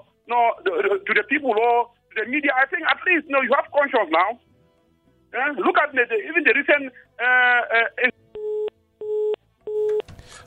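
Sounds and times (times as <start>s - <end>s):
speech: 0.3s - 4.5s, 5.3s - 8.1s
telephone busy signal after a dropped call: 8.4s - 10.1s.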